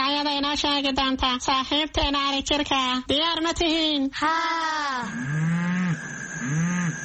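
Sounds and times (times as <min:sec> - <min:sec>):
speech: 0:00.4 - 0:05.5
cow mooing: 0:05.2 - 0:07.0.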